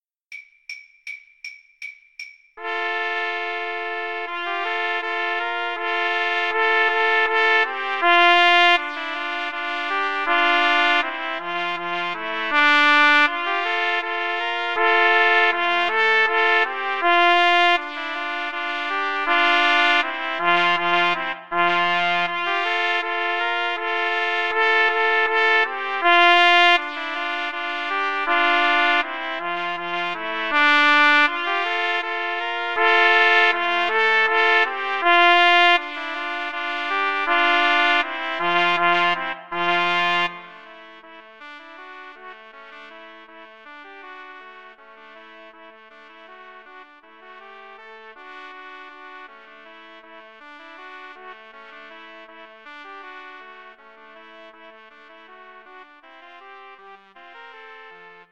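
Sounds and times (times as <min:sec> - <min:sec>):
trumpet trio playing: 0:02.6 - 0:41.2.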